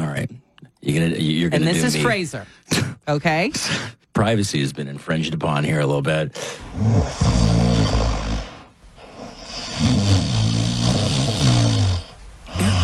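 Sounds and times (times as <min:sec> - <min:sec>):
speech: 0:00.8 - 0:08.2
human snoring: 0:06.6 - 0:12.8.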